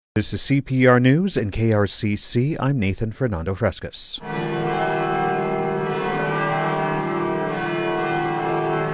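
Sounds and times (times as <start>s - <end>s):
speech: 0.2s - 4.6s
Cathedral Basilica church bells pealing in celebration of a new pope: 4.2s - 8.9s.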